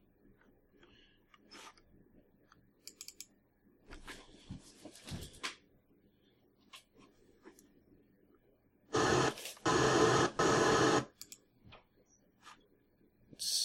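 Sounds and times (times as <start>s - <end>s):
harsh hissing static: 8.9s - 11.2s.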